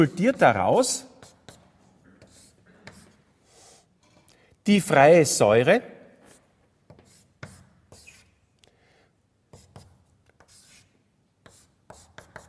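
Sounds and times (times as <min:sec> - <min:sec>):
speech: 0:00.0 - 0:01.1, 0:04.7 - 0:05.9
chalk writing on a blackboard during a chemistry lecture: 0:00.8 - 0:04.0, 0:06.2 - 0:08.5, 0:09.5 - 0:12.4.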